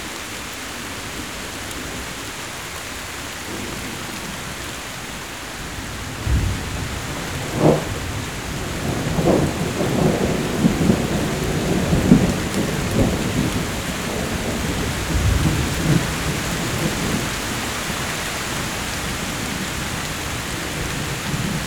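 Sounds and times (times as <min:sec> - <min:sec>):
rain hissing: 0:00.0 - 0:21.6
thunder rolling and rumbling: 0:05.6 - 0:21.6.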